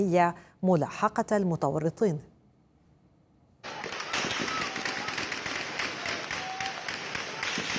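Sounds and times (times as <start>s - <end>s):
speech: 0.0s - 2.3s
heavy gunfire: 3.6s - 7.7s.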